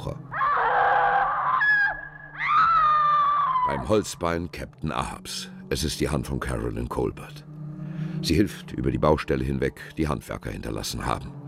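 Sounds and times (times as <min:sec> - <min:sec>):
strained tonal cries with bending pitch: 0:00.0 - 0:04.2
person screaming: 0:00.3 - 0:03.9
speech: 0:03.7 - 0:07.5, 0:08.2 - 0:11.4.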